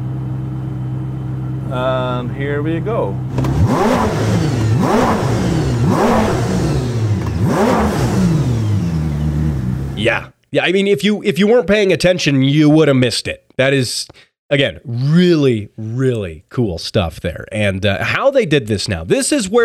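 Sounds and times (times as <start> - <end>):
Koenigsegg supercar engine idling: 0.0 - 10.0
speech: 1.7 - 5.4, 10.0 - 19.6.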